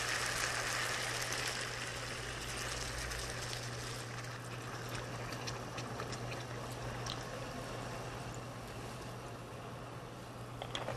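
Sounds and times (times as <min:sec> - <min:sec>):
water pouring into a cooking pot: 0:00.0 - 0:07.4
low steady hum: 0:00.0 - 0:10.9.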